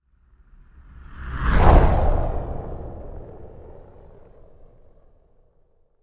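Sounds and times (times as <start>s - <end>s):
burning asteroid flyby: 1.0s - 5.4s.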